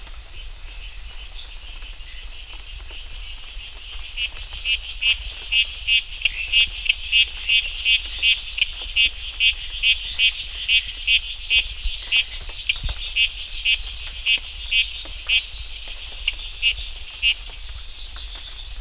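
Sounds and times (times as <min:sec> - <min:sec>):
Scinax frog calling: 0:04.2 - 0:17.6.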